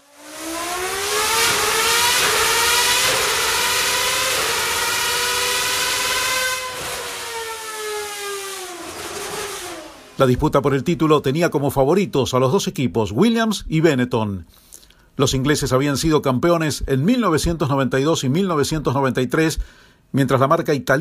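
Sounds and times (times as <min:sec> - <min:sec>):
67-degree Formula 1 V10 engine revving to 14,300 rpm: 0:00.0 - 0:10.6
speech: 0:10.2 - 0:14.6, 0:15.2 - 0:20.9.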